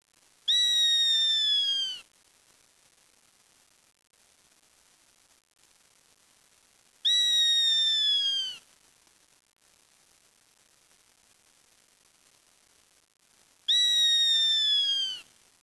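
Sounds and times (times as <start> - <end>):
bird calling long clear falling whistles: 0.5 - 2.0, 7.1 - 8.6, 13.7 - 15.2.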